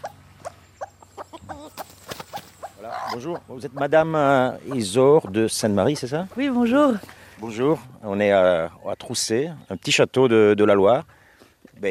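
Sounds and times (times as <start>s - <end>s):
hen clucking in a henhouse: 0.0s - 7.1s
speech: 3.1s - 11.2s.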